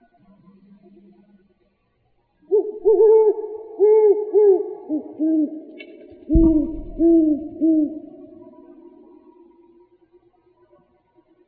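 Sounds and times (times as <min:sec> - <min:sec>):
great horned owl hooting in Arizona: 0:02.5 - 0:05.7, 0:06.3 - 0:09.0.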